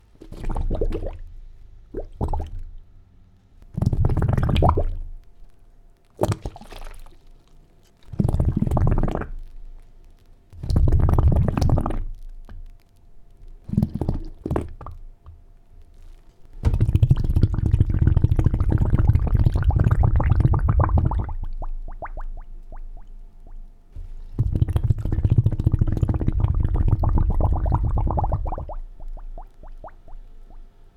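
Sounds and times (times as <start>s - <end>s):
water bubbles: 0.2s - 1.3s, 1.9s - 2.9s, 3.7s - 5.1s, 6.2s - 7.2s, 8.1s - 9.4s, 10.6s - 12.2s, 13.6s - 15.0s, 16.6s - 23.6s, 24.3s - 30.7s.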